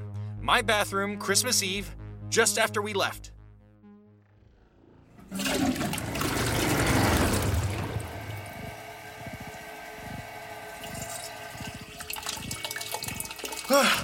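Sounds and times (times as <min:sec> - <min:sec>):
speech: 0:00.5 - 0:03.4, 0:05.3 - 0:05.7
toilet flushing: 0:05.2 - 0:14.0.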